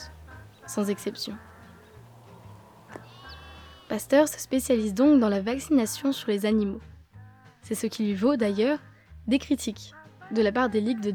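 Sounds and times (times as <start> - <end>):
sheep bleating: 0.3 - 4.0
speech: 0.7 - 1.5, 3.9 - 6.9, 7.7 - 11.1.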